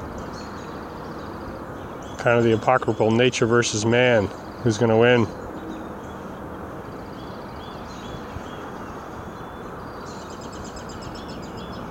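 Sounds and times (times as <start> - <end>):
several birds chirping and trilling: 0.0 - 11.8
steady broad roar of traffic: 0.0 - 11.8
speech: 2.2 - 5.4.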